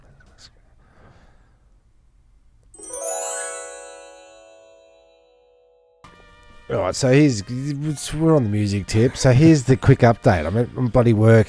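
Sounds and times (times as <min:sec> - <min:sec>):
bright chiming transition jingle with rising shimmer: 0:02.8 - 0:06.1
speech: 0:06.7 - 0:11.4.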